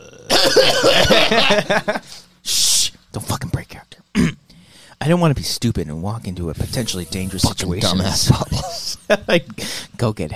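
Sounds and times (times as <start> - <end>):
person coughing: 0.0 - 1.6, 4.2 - 4.4
laughter: 0.3 - 2.2, 8.1 - 9.5
speech: 0.5 - 2.6, 5.1 - 10.3.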